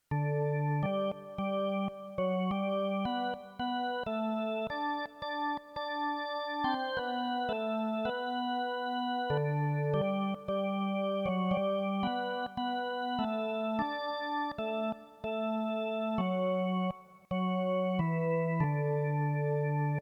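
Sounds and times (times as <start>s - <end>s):
musical prelude: 0.1s - 19.9s.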